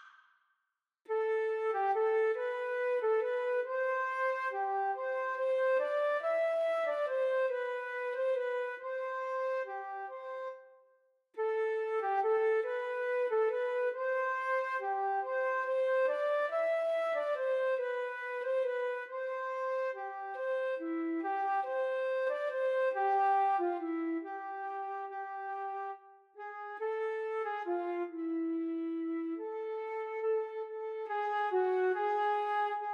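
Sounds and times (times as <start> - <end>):
flute duet playing a siciliana: 1.1 - 32.9.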